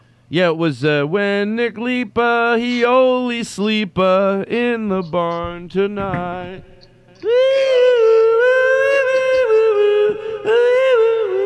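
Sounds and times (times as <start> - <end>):
faint constant electrical hum: 0.0 - 11.4
speech: 0.3 - 7.9
person humming a sustained tone into a phone: 4.8 - 11.4.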